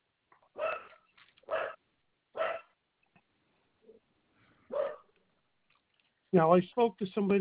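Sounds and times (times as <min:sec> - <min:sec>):
dog barking over a phone line: 0:00.5 - 0:02.8, 0:04.7 - 0:05.1
speech: 0:06.3 - 0:07.4.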